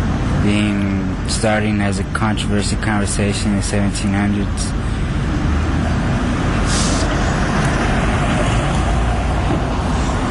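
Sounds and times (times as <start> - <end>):
loud steady drone of heavy truck traffic: 0.0 - 10.3
speech: 0.4 - 4.8
brief hiss like an air brake: 6.6 - 7.2.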